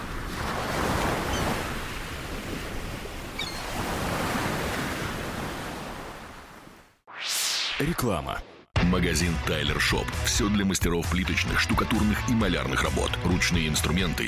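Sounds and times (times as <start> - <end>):
ocean waves breaking on a shore: 0.0 - 7.0
speech: 7.8 - 14.2.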